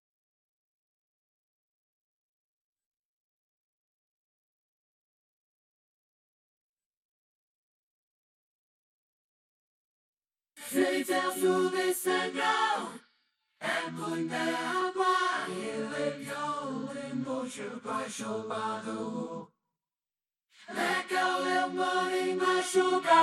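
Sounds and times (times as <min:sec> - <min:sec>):
backing vocals: 0:10.6 - 0:13.0, 0:13.6 - 0:19.5, 0:20.6 - 0:23.2.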